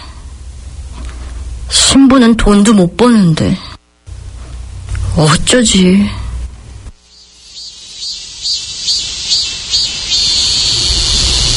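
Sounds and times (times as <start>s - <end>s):
speech: 1.9s - 3.6s, 5.2s - 6.2s
cicadas chirring in summer: 7.0s - 11.5s.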